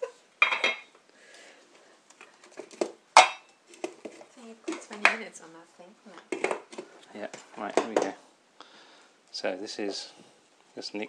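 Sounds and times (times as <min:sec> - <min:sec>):
dishes and cutlery clinking while tea is being made: 0:00.4 - 0:00.9, 0:02.8 - 0:05.2, 0:06.3 - 0:08.2
speech: 0:05.2 - 0:08.3, 0:09.4 - 0:11.0.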